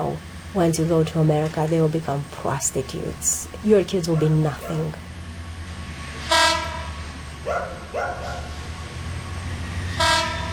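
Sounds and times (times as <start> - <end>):
speech: 0.0 - 5.1
train rumbling along the tracks: 0.0 - 10.5
train whistle or horn blasts: 6.2 - 7.2, 9.8 - 10.5.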